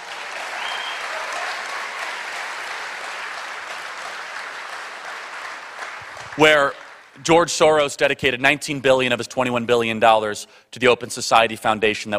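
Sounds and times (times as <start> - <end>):
applause from a large audience: 0.0 - 7.2
speech: 6.4 - 12.1.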